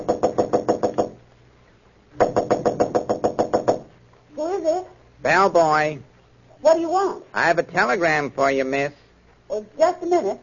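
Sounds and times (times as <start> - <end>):
knocking on a hotel room door: 0.0 - 1.2, 2.2 - 3.9
speech: 5.2 - 10.4.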